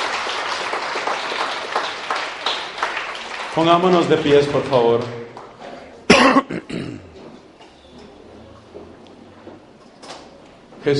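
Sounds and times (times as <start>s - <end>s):
crowd applauding: 0.0s - 5.6s
speech: 3.6s - 5.2s.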